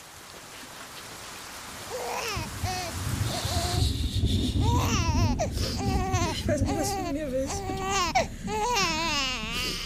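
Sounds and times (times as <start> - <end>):
newborn baby wailing at night: 1.9 - 3.8, 4.6 - 9.8.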